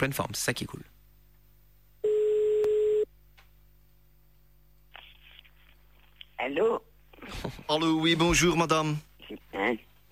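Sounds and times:
speech: 0.0 - 0.9, 6.5 - 10.1
telephone ringing tone as a call is placed: 2.0 - 3.1.

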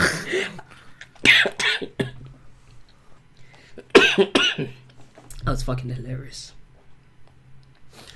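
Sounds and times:
person coughing: 0.0 - 2.2, 3.8 - 4.8
speech: 5.6 - 6.6.

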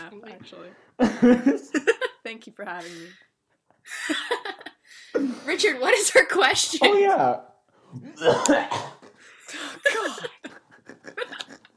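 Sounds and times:
speech: 0.1 - 11.4
laughter: 1.0 - 2.2, 9.0 - 11.7
man coughing harshly: 8.1 - 10.6
man's throat-clearing rasp: 8.2 - 10.4.

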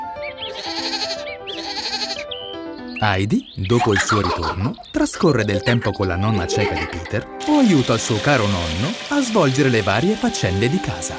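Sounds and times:
goats bleating in a pasture: 0.5 - 2.2
speech: 3.0 - 11.1
laughter: 6.4 - 7.2.

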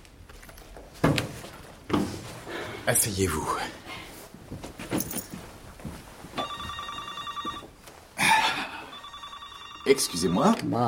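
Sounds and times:
speech: 2.9 - 3.8, 9.9 - 10.8
telephone ringing in a doctor's office: 6.4 - 7.8, 8.4 - 10.8.

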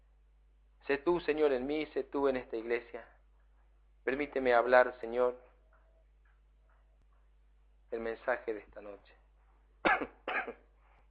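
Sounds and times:
speech: 0.9 - 3.2, 4.0 - 5.5, 7.9 - 9.2, 9.8 - 10.6
preacher coughing harshly during a church sermon: 9.8 - 10.7.

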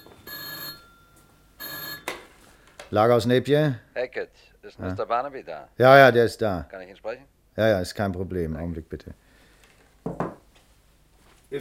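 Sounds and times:
old-style telephone bell ringing in a night watchman's office in a warehouse: 0.0 - 2.2
speech: 2.9 - 9.2.

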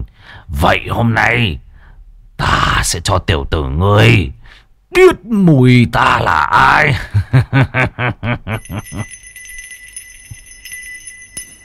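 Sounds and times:
speech: 0.3 - 1.6, 2.4 - 9.2
hand bell shaken and ringing: 8.6 - 11.6.

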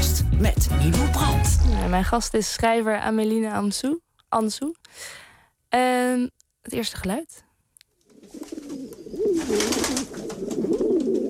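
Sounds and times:
speech: 0.4 - 7.4, 8.3 - 11.2
pigeons cooing: 8.1 - 11.2.

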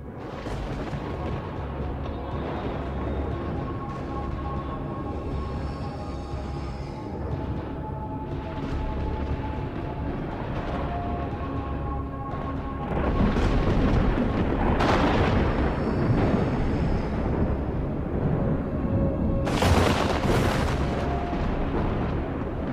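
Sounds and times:
sharp thunder cracks: 0.0 - 4.4, 12.3 - 22.7
thunder sound effect rolling rumble of repeated thunderclaps: 0.0 - 22.7.

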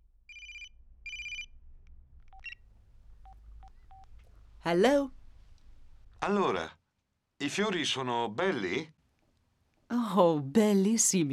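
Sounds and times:
telephone ringing with bright electronic trilling: 0.3 - 1.5
speech: 4.7 - 5.2, 6.2 - 6.8, 7.4 - 9.0, 9.9 - 11.3.

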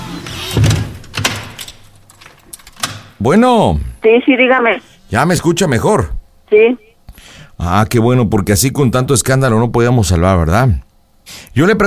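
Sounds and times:
door being pushed shut and latched: 0.4 - 3.2
speech: 3.2 - 11.8.

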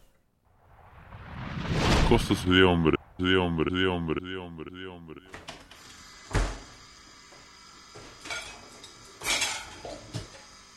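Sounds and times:
speech: 2.1 - 5.5
dishes, pots and cutlery clattering as they are washed: 8.2 - 10.3.

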